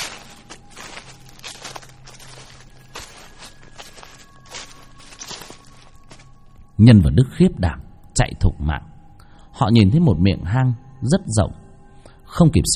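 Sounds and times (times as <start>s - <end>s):
slow footsteps crunching and rustling on dry leaves: 0.0s - 6.7s
speech: 6.8s - 8.9s, 9.6s - 11.6s, 12.4s - 12.7s.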